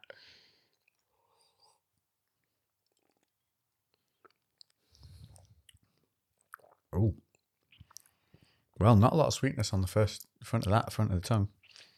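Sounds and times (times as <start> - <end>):
person sipping a drink from a glass: 0.0 - 6.9
speech: 8.8 - 11.6.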